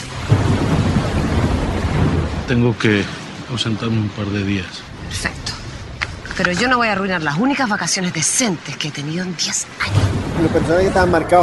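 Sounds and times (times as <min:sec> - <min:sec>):
deep rolling thunder from an approaching hurricane: 0:00.0 - 0:06.0, 0:09.8 - 0:11.4
steady hiss of heavy rain from an approaching hurricane: 0:00.0 - 0:11.4
speech: 0:02.5 - 0:05.4, 0:06.4 - 0:11.4.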